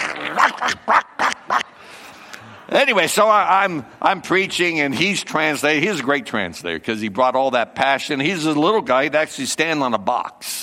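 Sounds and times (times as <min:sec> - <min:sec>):
person imitating dog barking: 0:00.0 - 0:01.7
speech: 0:02.7 - 0:10.6.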